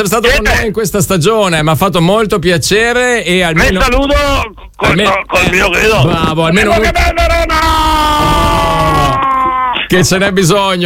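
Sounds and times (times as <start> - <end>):
speech: 0.0 - 8.1, 9.9 - 10.8
man shouting a battle cry: 6.6 - 9.2.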